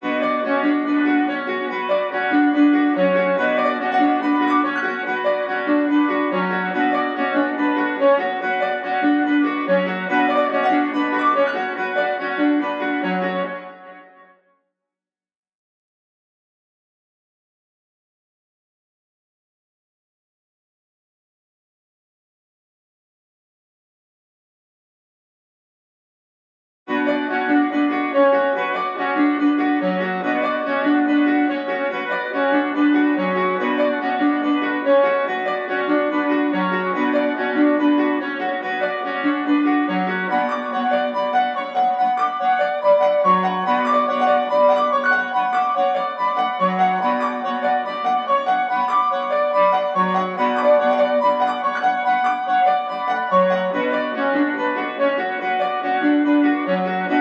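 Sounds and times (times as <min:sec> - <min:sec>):
piano melody loop in F sharp minor: 0:00.0 - 0:13.8, 0:26.9 - 0:57.1.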